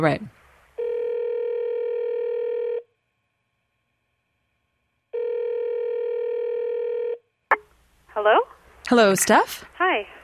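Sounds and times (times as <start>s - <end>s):
speech: 0.0s - 0.4s, 8.2s - 10.2s
telephone dial tone: 0.8s - 2.9s, 5.2s - 7.2s.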